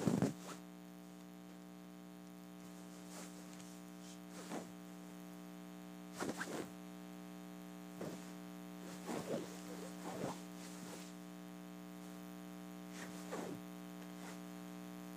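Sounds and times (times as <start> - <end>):
pillow case fabric scratched and rubbed: 0.0 - 0.7, 2.6 - 4.8, 6.1 - 6.7, 8.0 - 11.2, 12.9 - 14.5
steady low electrical hum: 0.0 - 15.1.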